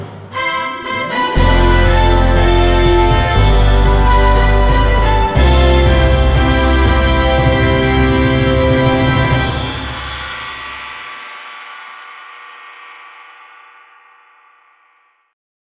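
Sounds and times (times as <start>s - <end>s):
festive sound for the start of an event: 0.3s - 11.7s.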